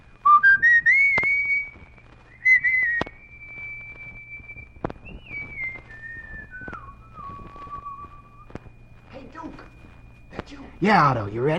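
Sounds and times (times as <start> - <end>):
person whistling a simple melodic tune: 0.2 - 8.6
speech: 10.8 - 11.5.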